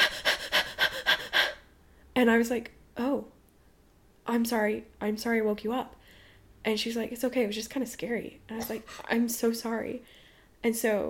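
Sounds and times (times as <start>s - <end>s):
person imitating heavy rapid panting of someone breathing in sleep: 0.0s - 1.7s
speech: 2.2s - 3.3s, 4.3s - 6.0s, 6.6s - 11.0s.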